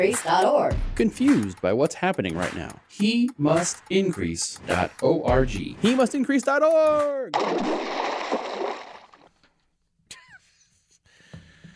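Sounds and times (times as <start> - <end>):
speech: 0.0 - 8.1
loud rushing splash of water: 7.3 - 9.6.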